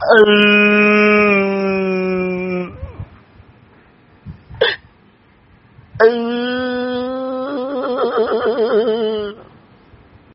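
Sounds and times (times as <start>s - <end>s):
person crying: 0.0s - 3.0s, 4.6s - 4.9s, 6.0s - 9.4s.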